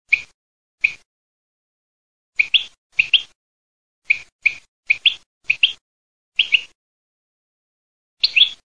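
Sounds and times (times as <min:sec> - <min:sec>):
goldfinch song in the countryside: 0:00.1 - 0:01.1, 0:02.4 - 0:03.4, 0:04.0 - 0:06.8, 0:08.2 - 0:08.6.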